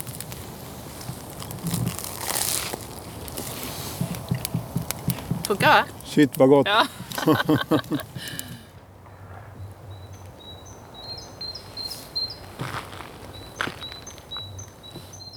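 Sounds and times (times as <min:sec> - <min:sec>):
ice cracking: 0:00.0 - 0:08.6
small birds chirping outdoors in early spring: 0:00.0 - 0:15.3
speech: 0:05.5 - 0:08.4
laughter: 0:06.6 - 0:08.6.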